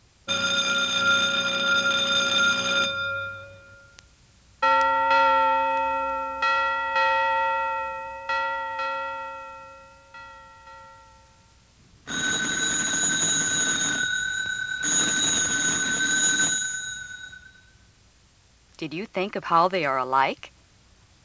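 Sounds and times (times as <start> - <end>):
steady electric-style bell ringing: 0.3 - 4.0, 4.6 - 17.8
speech: 18.8 - 20.5.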